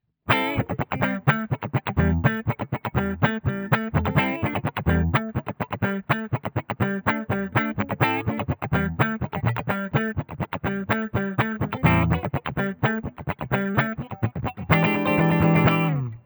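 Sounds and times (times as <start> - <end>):
clean middle Gibson tone: 0.3 - 16.2.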